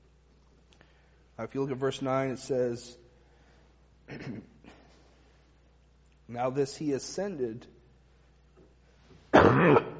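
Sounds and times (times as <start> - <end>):
speech: 1.4 - 3.0, 6.3 - 7.8
person coughing harshly while giving a Bible talk: 4.1 - 4.9, 9.3 - 9.9.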